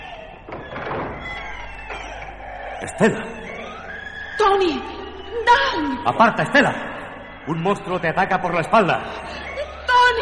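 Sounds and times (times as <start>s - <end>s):
door being opened with a scraping rattling burst: 0.0s - 2.8s
door clunk: 0.4s - 2.4s
speech: 2.8s - 3.4s, 4.4s - 9.3s.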